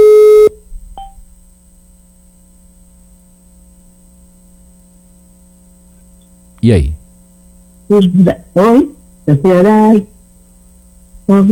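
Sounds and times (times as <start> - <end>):
telephone tone as a call is placed: 0.0 - 1.2
speech: 6.6 - 7.0, 7.9 - 10.1, 11.3 - 11.5.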